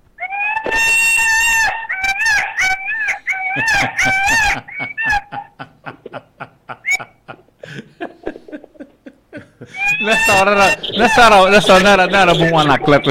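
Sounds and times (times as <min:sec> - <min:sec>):
loud strained squawking calls: 0:00.2 - 0:05.6, 0:09.7 - 0:13.0
chickens clucking in background of phone call: 0:00.2 - 0:13.0
laughter: 0:03.3 - 0:13.0
speech: 0:10.4 - 0:13.0.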